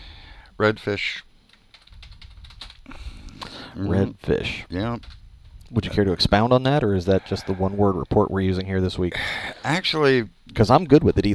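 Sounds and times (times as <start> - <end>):
speech: 0.6 - 1.3, 3.8 - 11.3
computer keyboard typing: 1.4 - 5.8.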